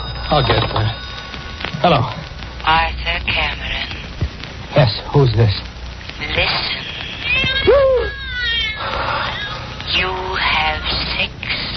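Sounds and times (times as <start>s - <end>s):
faint hiss: 0.0s - 11.7s
speech: 0.3s - 1.0s, 1.8s - 3.8s, 4.7s - 6.8s
stray cat meowing: 7.0s - 9.7s.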